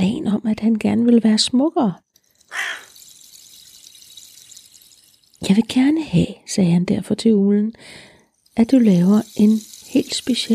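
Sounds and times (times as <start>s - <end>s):
speech: 0.0s - 2.1s, 5.4s - 10.5s
soft steady hiss: 2.1s - 6.4s, 7.8s - 10.5s
crow cawing harshly: 2.5s - 2.9s.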